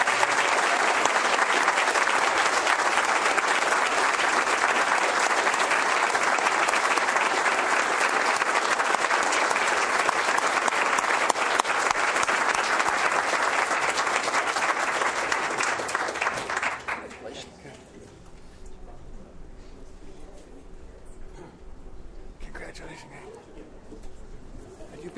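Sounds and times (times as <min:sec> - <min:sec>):
sustained applause from a sizable audience: 0:00.0 - 0:17.4.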